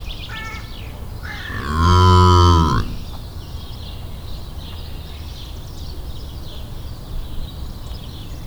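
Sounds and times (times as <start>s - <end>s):
scimitar-horned oryx at Debrecen zoo on a windless day: 1.3s - 3.2s.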